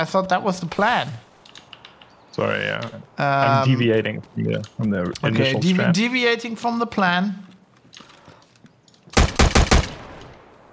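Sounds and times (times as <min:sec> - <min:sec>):
speech: 0:00.0 - 0:01.2, 0:02.4 - 0:07.5
unsuppressed gun firing in a video game: 0:09.2 - 0:10.5.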